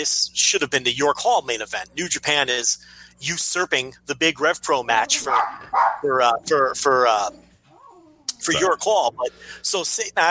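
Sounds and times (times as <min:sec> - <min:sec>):
speech: 0:00.0 - 0:07.4, 0:08.4 - 0:10.2
dog barking and yelping wildly down the block: 0:05.2 - 0:06.1.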